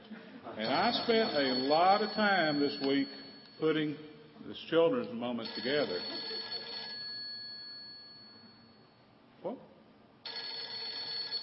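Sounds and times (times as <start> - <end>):
cell phone ringtone in a church: 0.6 - 3.6, 5.4 - 8.8, 10.2 - 11.4
speech: 0.6 - 6.2.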